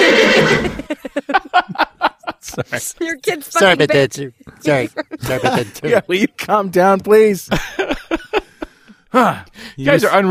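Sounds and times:
horse neighing and snorting: 0:00.0 - 0:00.9
laughter: 0:00.0 - 0:06.4, 0:07.5 - 0:09.0
speech: 0:02.6 - 0:08.0, 0:09.1 - 0:10.2.

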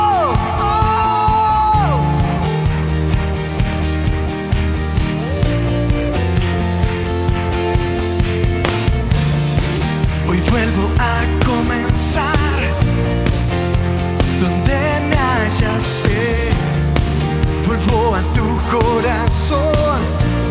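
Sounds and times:
audience shouting and cheering in praise to Christ: 0:00.0 - 0:16.4
loud driving worship music: 0:00.0 - 0:20.4.

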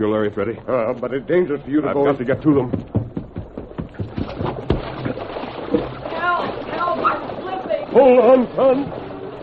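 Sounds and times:
speech: 0:00.0 - 0:03.0, 0:08.0 - 0:09.0
rushing water of a stream: 0:00.0 - 0:09.4
sharp splashes of a man entering a stream: 0:02.5 - 0:09.4.

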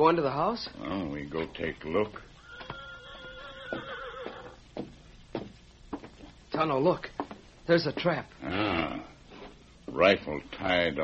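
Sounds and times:
speech: 0:00.0 - 0:02.3, 0:03.7 - 0:04.0, 0:06.6 - 0:07.1, 0:07.7 - 0:09.1, 0:09.9 - 0:11.0
horse whinnying: 0:02.4 - 0:04.6
hoof thuds or stamps: 0:02.6 - 0:06.4.

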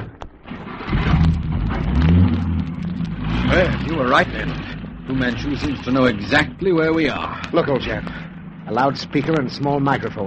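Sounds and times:
car engine revving and accelerating: 0:00.0 - 0:10.2
speech: 0:03.6 - 0:10.2.

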